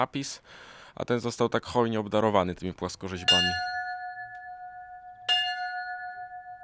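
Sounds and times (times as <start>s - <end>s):
speech: 0.0s - 3.8s
small church bell ringing: 3.2s - 6.6s.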